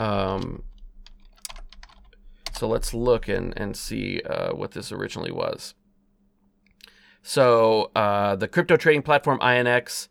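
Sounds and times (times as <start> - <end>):
light clicks from a computer keyboard: 0.0 - 3.9
brief voiced sound: 0.0 - 5.2
speech: 2.6 - 5.8, 7.2 - 10.0.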